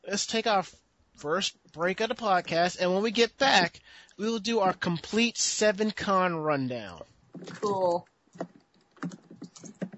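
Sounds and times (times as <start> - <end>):
speech: 0.1 - 8.5
fast typing on a computer keyboard: 7.4 - 9.9.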